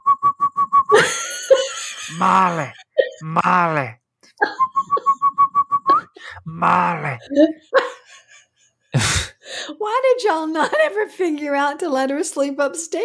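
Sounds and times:
person whistling a quick run of short notes: 0.0 - 1.4, 4.4 - 6.3
laughter: 0.9 - 3.8, 6.6 - 9.2
groaning, wailing vocal sounds: 2.1 - 3.9, 6.4 - 7.5
speech: 2.1 - 4.5, 6.5 - 7.8, 9.8 - 13.0.

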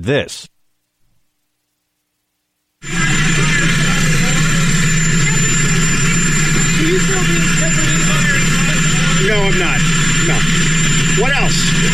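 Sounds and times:
speech: 0.0 - 0.5, 2.8 - 3.8
jet engine roaring: 2.8 - 11.9
voices murmuring: 2.8 - 11.9.

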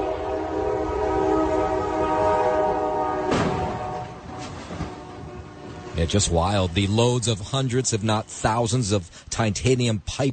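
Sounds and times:
huge freight train horn blaring: 0.0 - 9.0
rumbling freight train engine: 0.0 - 10.3
freight train crashing into an 18-wheeler truck stuck on the tracks: 3.3 - 4.9
speech: 6.1 - 10.3.

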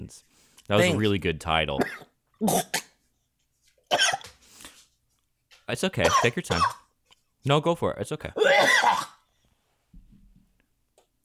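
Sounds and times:
speech: 0.1 - 2.9, 3.9 - 4.3, 5.7 - 6.8, 7.4 - 9.2
man coughing: 0.8 - 1.1, 1.8 - 2.9, 6.0 - 6.8, 8.4 - 9.2.

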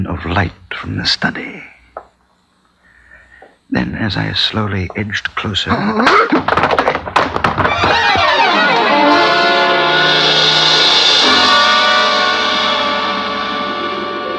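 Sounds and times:
speech: 0.0 - 1.7, 3.7 - 6.8
heavy thuds of a person struck and dropping to the floor in a hall: 6.0 - 8.4
long ringing warbling swell: 8.3 - 14.3.

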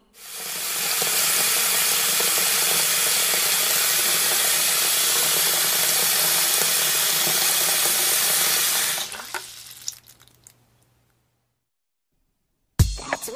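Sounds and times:
tap water running into a balloon: 0.2 - 10.6
faint water drips: 9.0 - 10.9.

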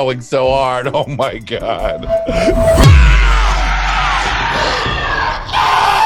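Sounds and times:
speech: 0.0 - 3.4
deep monstrous roar of a monster chomping: 2.8 - 5.6.

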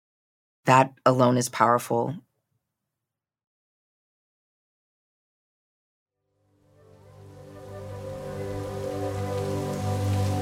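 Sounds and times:
speech: 0.7 - 2.2
heavy rain downpour: 6.9 - 10.4.

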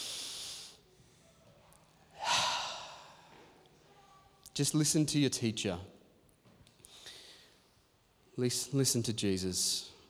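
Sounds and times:
group taking a big deep breath in: 2.2 - 3.6, 6.8 - 7.8
speech: 4.6 - 6.0, 8.4 - 10.0.

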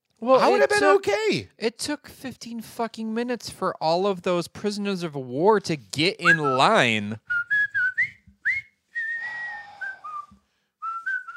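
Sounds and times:
speech: 0.2 - 7.4
jaunty marching tune whistled: 6.2 - 11.3.

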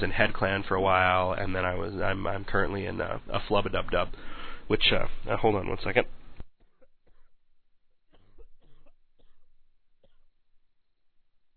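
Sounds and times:
speech: 0.0 - 6.2
person coughing in sharp bursts: 8.1 - 10.3.

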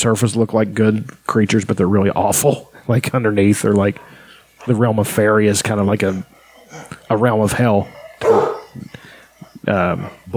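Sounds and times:
speech: 0.0 - 10.3
dog barking: 5.7 - 10.3.

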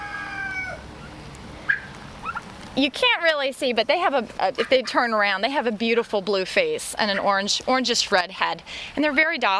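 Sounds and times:
heritage turkeys calling in their pen: 0.0 - 2.5, 4.5 - 5.4
speech: 2.8 - 9.5.

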